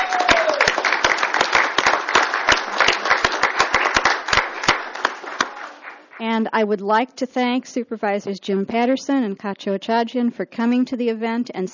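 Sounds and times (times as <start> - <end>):
audience applause: 0.0 - 6.2
speech: 6.3 - 11.7.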